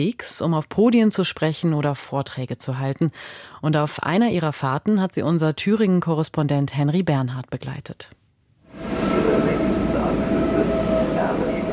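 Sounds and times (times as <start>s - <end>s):
speech: 0.0s - 8.2s
train rumbling at a railway platform: 8.7s - 11.7s.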